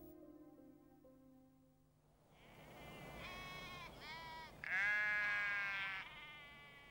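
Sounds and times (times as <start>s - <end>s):
sheep bleating outdoors in a grazing field: 2.4s - 6.9s.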